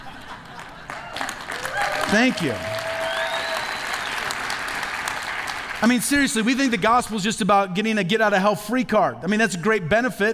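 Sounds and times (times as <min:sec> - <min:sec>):
church congregation applauding during a sermon: 0:00.0 - 0:06.0
speech: 0:02.1 - 0:02.7, 0:05.8 - 0:10.3.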